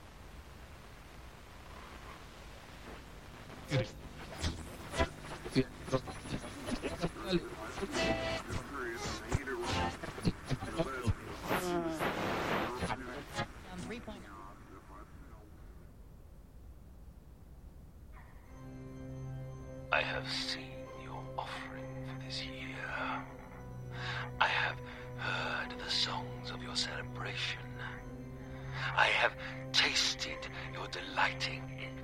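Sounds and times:
harsh crackling radio interference static with bursts and clicks: 0.0 - 16.1, 19.9 - 32.0
warbling distorted radio tones: 3.4 - 14.0
speech: 3.7 - 4.1, 5.5 - 6.4, 7.3 - 8.6.

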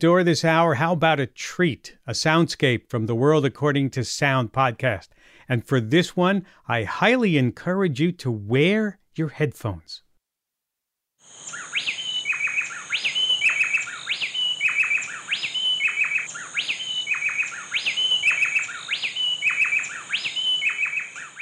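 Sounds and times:
speech: 0.0 - 10.0
female and male bay wrens duetting in call and response: 11.3 - 21.3.

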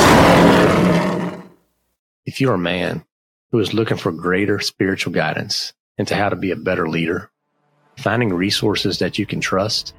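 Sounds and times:
lion roar: 0.0 - 1.6
speech: 2.3 - 7.3, 8.0 - 9.9.

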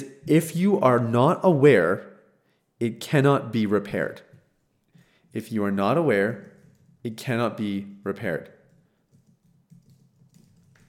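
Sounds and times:
speech: 0.0 - 2.1, 2.8 - 4.3, 5.3 - 8.6
typing on a computer keyboard: 6.2 - 7.1, 8.6 - 10.8.

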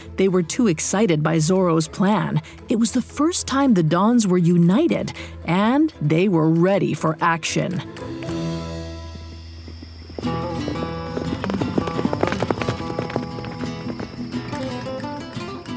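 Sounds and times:
speech: 0.2 - 8.2
horses galloping: 9.0 - 15.7.

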